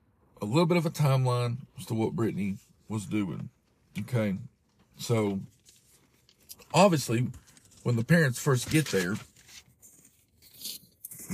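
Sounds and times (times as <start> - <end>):
speech: 0.4 - 5.6, 6.7 - 9.3
crisp paper pages being turned: 5.0 - 10.6.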